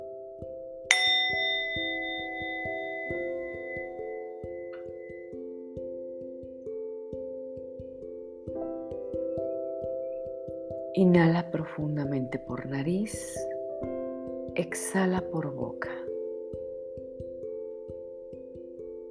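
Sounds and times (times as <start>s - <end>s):
meditation bell ringing: 0.9s - 6.2s
low sustained tones: 0.9s - 18.1s
speech: 11.0s - 13.5s, 14.6s - 16.0s.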